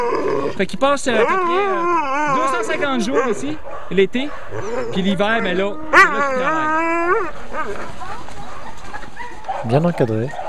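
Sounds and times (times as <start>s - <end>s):
speech: 0.0s - 8.2s, 9.6s - 10.4s
crowd of sled dogs barking and yipping: 0.0s - 10.4s.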